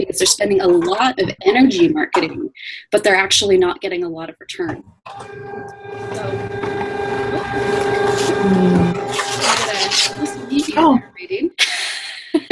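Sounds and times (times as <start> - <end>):
speech: 0.1 - 11.8
printer running with whirring hum and rattling feed: 5.1 - 11.0.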